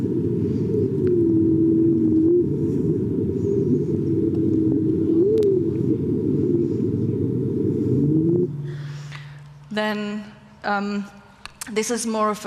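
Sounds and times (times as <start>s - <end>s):
whale call sped up tenfold: 0.0s - 9.1s
speech: 10.7s - 12.4s.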